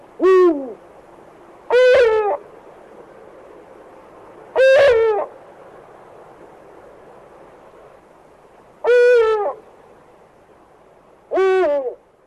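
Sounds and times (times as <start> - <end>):
faint steady hiss: 0.0 - 12.2
male and female eagle owl pair hooting in a courtship-season duet: 1.7 - 2.4, 4.6 - 5.3, 8.8 - 9.6, 11.3 - 12.0.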